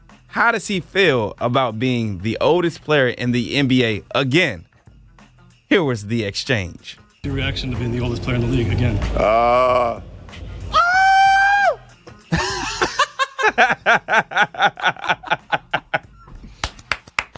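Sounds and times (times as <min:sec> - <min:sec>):
speech: 0:00.4 - 0:04.7, 0:05.7 - 0:10.4, 0:13.6 - 0:15.2
man screaming: 0:09.2 - 0:10.0, 0:10.7 - 0:11.9
rapid rhythmic cackling laughter: 0:12.3 - 0:16.2.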